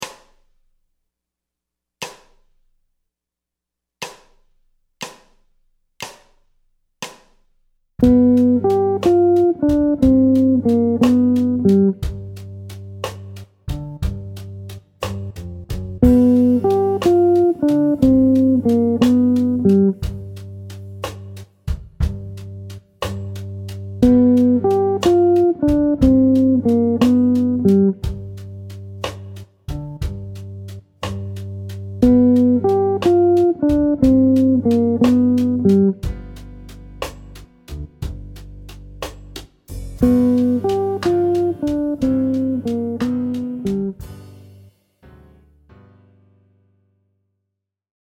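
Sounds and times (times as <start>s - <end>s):
jazz guitar phrase over dominant chords: 8.0s - 13.1s, 13.7s - 20.9s, 23.4s - 38.4s, 39.7s - 44.5s.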